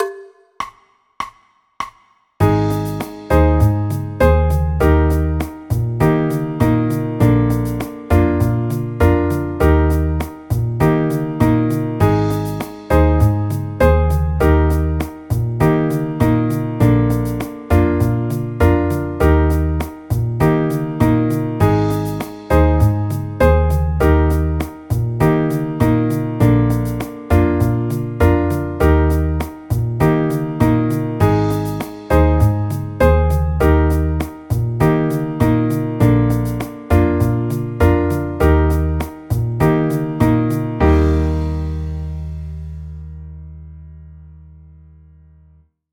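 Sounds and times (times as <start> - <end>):
chord progression in E flat major: 2.4 - 44.2.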